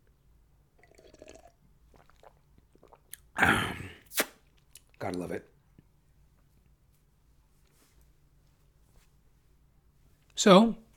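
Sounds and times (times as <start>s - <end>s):
person slurping a sip of water: 0.8s - 4.4s
soft wet mouth sounds: 0.8s - 5.0s
speech: 5.1s - 5.5s, 10.4s - 10.8s.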